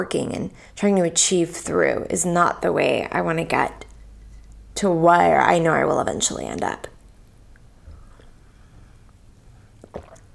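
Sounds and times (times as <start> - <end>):
speech: 0.0 - 3.9, 4.8 - 6.9
low steady hum: 0.0 - 10.3
quiet wet sip from a drink: 9.0 - 10.3.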